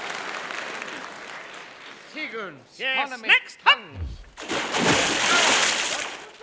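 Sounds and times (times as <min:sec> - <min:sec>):
speech: 0:02.3 - 0:04.9
person thrown into water splashing: 0:03.9 - 0:06.3.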